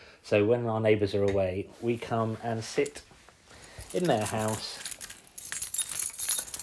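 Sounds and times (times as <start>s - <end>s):
speech: 0.3s - 3.1s, 3.9s - 4.9s
bunch of keys jangling in a house: 3.6s - 6.6s.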